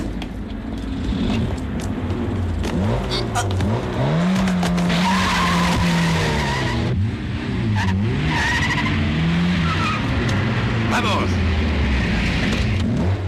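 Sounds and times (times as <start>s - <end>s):
car engines revving in a 1979 Spanish film car chase: 0.0s - 13.2s
tires skidding and squealing in a car chase: 2.7s - 7.0s, 7.6s - 13.2s.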